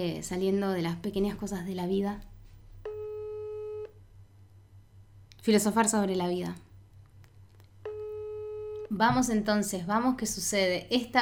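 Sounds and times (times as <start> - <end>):
speech: 0.0 - 2.3, 5.4 - 6.7, 8.9 - 11.1
faint low hum: 0.0 - 11.1
telephone call tone beep: 2.8 - 4.0, 7.8 - 9.0.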